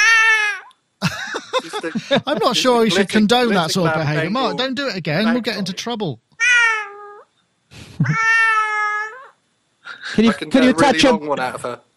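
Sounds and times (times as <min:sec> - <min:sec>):
cat held by a person meowing: 0:00.0 - 0:00.7, 0:06.4 - 0:07.2, 0:08.0 - 0:09.4
laughter: 0:01.0 - 0:05.8, 0:07.8 - 0:08.2
speech: 0:01.8 - 0:06.2, 0:08.0 - 0:08.4, 0:10.1 - 0:11.9.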